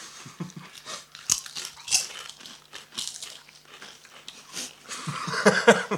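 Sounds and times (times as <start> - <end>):
potato chips being chewed: 0.5 - 5.2
bag crinkling: 0.7 - 5.0
laughter: 4.9 - 5.9.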